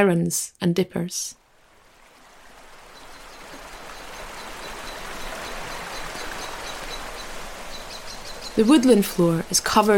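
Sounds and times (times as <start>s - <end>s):
speech: 0.0s - 1.4s, 8.6s - 9.9s
stream water rushing through a wooded glen: 1.4s - 9.9s
faint high chirps of birds: 2.9s - 9.0s.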